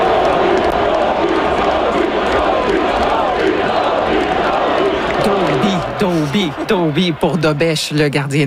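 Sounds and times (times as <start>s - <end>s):
large street crowd cheering for a hockey goaltender during a player presentation: 0.0s - 8.4s
speech: 6.0s - 8.4s.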